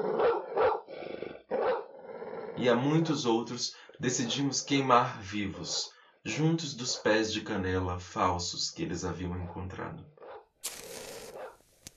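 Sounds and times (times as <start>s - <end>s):
dogs barking: 0.0s - 0.9s, 1.5s - 1.9s
dogs growling: 0.0s - 2.7s
speech: 2.6s - 10.8s.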